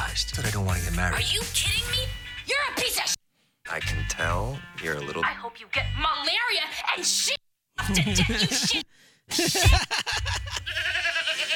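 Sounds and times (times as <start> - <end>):
speech: 0.2 - 11.5
laughter: 7.8 - 11.5
goats bleating loudly: 10.5 - 11.5.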